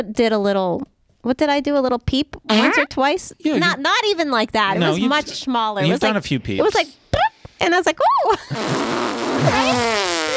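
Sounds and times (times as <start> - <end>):
speech: 0.0 - 10.1
fart sound effect: 8.5 - 10.3.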